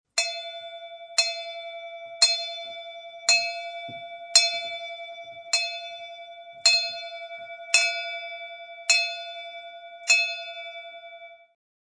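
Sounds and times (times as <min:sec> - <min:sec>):
multiple bell rings: 0:00.2 - 0:11.6.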